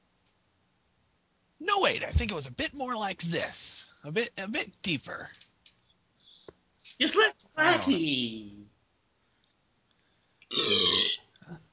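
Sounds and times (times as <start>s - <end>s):
speech: 1.6s - 5.4s, 7.0s - 8.6s, 10.5s - 11.6s
person belching: 10.5s - 11.6s.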